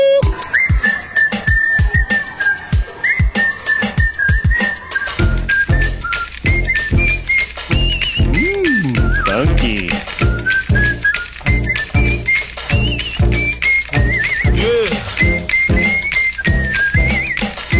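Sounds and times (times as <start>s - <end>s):
human whistle carrying a bright bouncy pop melody: 0.0s - 17.7s
punchy drum and bass groove: 5.2s - 17.7s.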